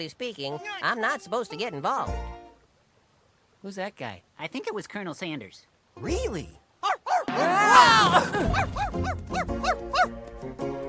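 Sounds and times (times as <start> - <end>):
speech: 0.0 - 2.3, 3.6 - 6.6, 7.3 - 10.7
dog high-pitched yipping barks: 6.8 - 7.3, 8.5 - 10.2
laughter: 7.4 - 9.1
dog brief rising whine: 8.5 - 10.2.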